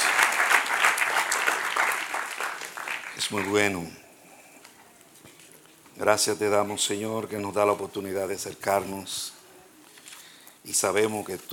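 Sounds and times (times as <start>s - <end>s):
church congregation applauding: 0.0s - 3.8s
speech: 3.2s - 4.0s, 6.0s - 9.4s, 10.6s - 11.5s.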